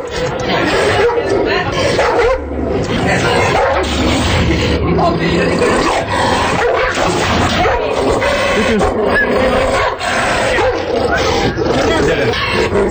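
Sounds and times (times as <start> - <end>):
laughter: 0.0 - 6.3, 7.3 - 9.6, 10.8 - 12.8
people's voices: 0.0 - 12.8
Caucasian shepherd dog barking: 0.6 - 2.5, 3.2 - 3.9, 6.5 - 12.7
speech: 8.7 - 9.7.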